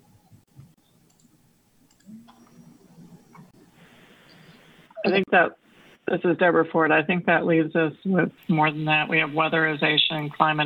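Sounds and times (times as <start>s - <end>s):
low steady hum: 0.0s - 10.6s
computer mouse clicking: 1.1s - 1.3s, 1.9s - 3.5s
speech: 5.1s - 10.6s.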